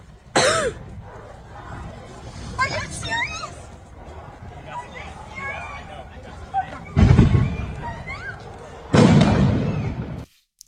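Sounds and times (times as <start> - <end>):
crowd noise: 0.0 - 10.3
scattered voices: 0.4 - 10.0
fireworks going off in crackling bursts: 6.9 - 8.0, 8.9 - 10.4.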